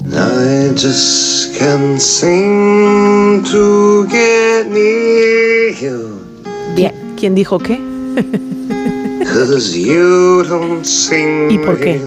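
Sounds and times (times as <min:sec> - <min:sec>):
recorded acoustic song with solo voice and soft accompaniment: 0:00.0 - 0:12.0
speech: 0:00.4 - 0:06.0, 0:06.8 - 0:08.5, 0:09.2 - 0:12.0
laughter: 0:08.1 - 0:09.9.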